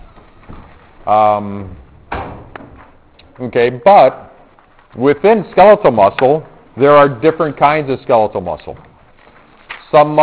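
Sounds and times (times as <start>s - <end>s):
door opening by a pressed-down lever handle with squeaky creak: 0.0s - 3.4s
speech: 1.0s - 1.8s, 3.4s - 4.3s, 4.9s - 8.9s, 9.9s - 10.2s.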